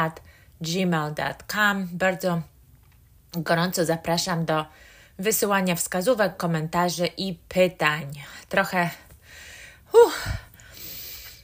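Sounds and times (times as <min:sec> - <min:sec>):
speech: 0:00.0 - 0:02.5, 0:03.3 - 0:09.0, 0:09.9 - 0:10.5
woman breathing softly after running: 0:04.7 - 0:05.2, 0:08.3 - 0:11.4
woman gasping for breath after running: 0:09.2 - 0:11.4.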